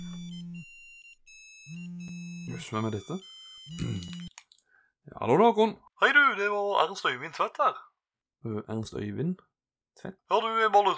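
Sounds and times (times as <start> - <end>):
telephone ringing in electronic bursts: 0.0 - 4.3
speech: 2.5 - 4.3, 5.2 - 10.9.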